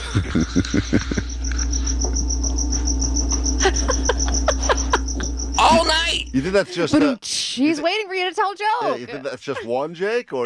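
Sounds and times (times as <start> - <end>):
laughter: 0.0 - 1.9, 3.6 - 5.8, 6.4 - 7.2, 8.6 - 10.4
cricket chirping indoors: 0.0 - 6.7
speech: 0.1 - 1.4, 3.6 - 3.9, 6.3 - 10.4.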